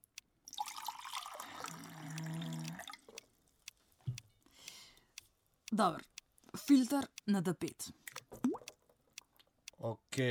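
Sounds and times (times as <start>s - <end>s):
water pouring into a vessel: 0.5s - 3.0s
speech: 5.7s - 8.0s, 9.8s - 10.2s.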